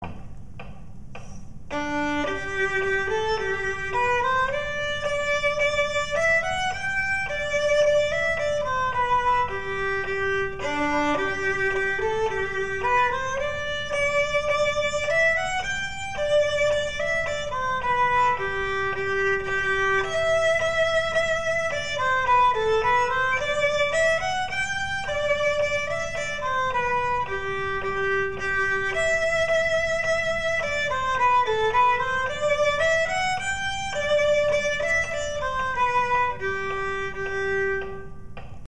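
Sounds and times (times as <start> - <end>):
English folk song on fast violin: 1.7 - 38.3.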